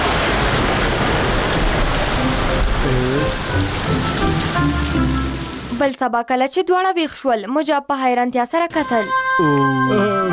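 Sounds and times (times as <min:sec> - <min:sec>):
rain falling: 0:00.0 - 0:06.1
speech: 0:05.8 - 0:10.2.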